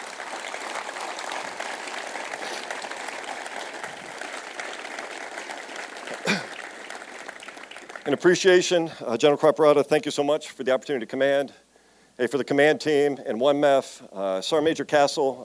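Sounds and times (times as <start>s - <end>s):
large audience applauding a military band: 0.0s - 8.4s
speech: 8.1s - 11.6s, 12.2s - 15.4s.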